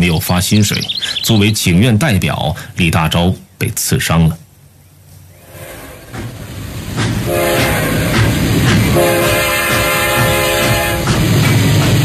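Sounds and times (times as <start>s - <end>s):
speech: 0.1s - 4.4s
train rumbling along the rails: 5.3s - 12.0s.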